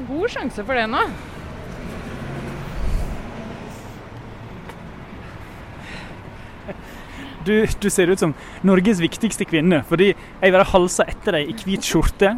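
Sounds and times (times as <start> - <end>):
cars passing: 0.0 - 12.3
dense street traffic rumble: 0.0 - 12.3
speech: 0.2 - 1.4, 6.7 - 12.3.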